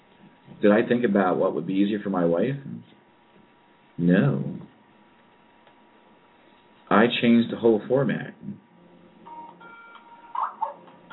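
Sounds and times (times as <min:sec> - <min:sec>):
speech: 0:00.6 - 0:02.9, 0:04.0 - 0:04.5, 0:06.9 - 0:08.6
Skype incoming-call ringtone: 0:09.2 - 0:11.1.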